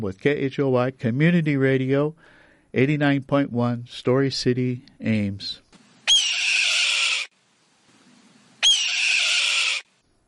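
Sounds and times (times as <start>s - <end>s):
speech: 0.0s - 5.6s
faint noise: 0.0s - 10.2s
red-tailed hawk hoarse descending screams: 6.0s - 7.3s, 8.6s - 9.9s.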